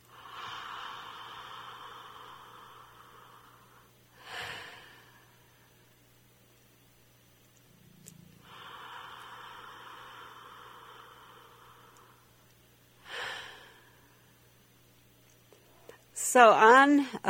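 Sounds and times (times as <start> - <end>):
slow deep breaths during a belly-breathing exercise: 0.0 - 6.3, 7.7 - 14.8
speech: 16.3 - 17.2.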